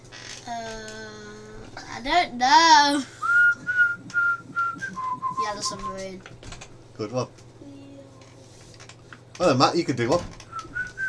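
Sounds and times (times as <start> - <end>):
speech: 2.0 - 3.2, 5.5 - 7.4, 9.4 - 10.4
person whistling a short tune: 3.2 - 6.0, 10.5 - 11.0.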